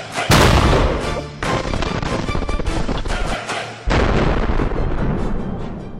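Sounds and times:
explosion blowing up a 2013 Tesla Model S car: 0.3s - 2.7s, 3.9s - 5.8s.

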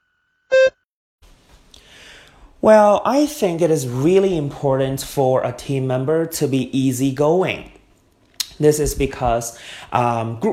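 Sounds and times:
short buzzy electronic test prompt beep: 0.5s - 0.8s
speech: 2.6s - 7.8s, 8.6s - 10.5s.

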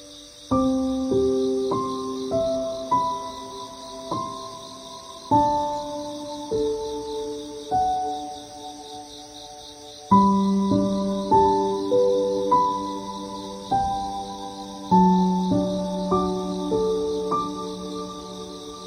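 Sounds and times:
autumn insects chirring: 0.0s - 18.8s.

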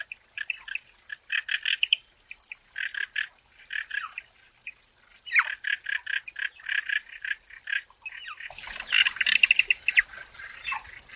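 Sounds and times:
frogs calling in a forest: 0.4s - 2.0s, 2.8s - 4.2s, 5.3s - 10.9s.

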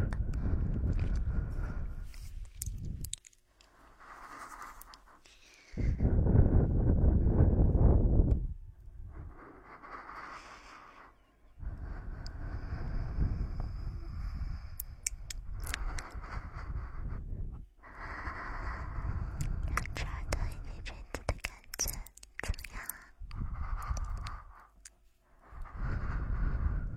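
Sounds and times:
faint mouth clicks: 0.0s - 5.9s, 9.9s - 17.0s, 18.0s - 25.0s
breathing and blowing right beside the ear: 0.2s - 3.1s, 3.7s - 7.9s, 8.9s - 20.7s, 22.8s - 26.9s.

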